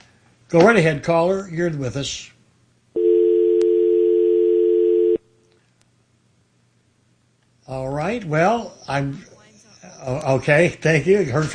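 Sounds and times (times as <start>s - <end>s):
speech: 0.5s - 2.3s, 7.7s - 9.3s, 9.9s - 11.5s
telephone dial tone after a dropped call: 3.0s - 5.2s.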